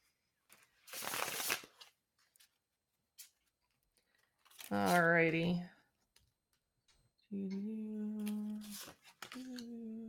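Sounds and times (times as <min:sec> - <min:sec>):
tarot deck riffle shuffle during a tarot reading: 0:00.9 - 0:01.9, 0:08.2 - 0:09.7
speech: 0:04.7 - 0:05.7, 0:07.3 - 0:08.4.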